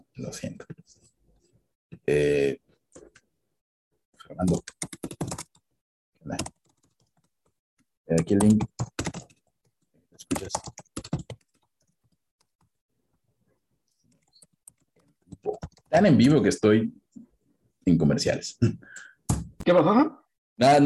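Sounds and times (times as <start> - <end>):
speech: 0.2 - 0.8, 2.1 - 2.6, 4.4 - 4.7, 8.2 - 8.8, 15.9 - 17.0, 17.8 - 19.0, 19.7 - 20.8
keyboard typing: 4.4 - 5.7, 6.3 - 12.8, 14.0 - 16.0.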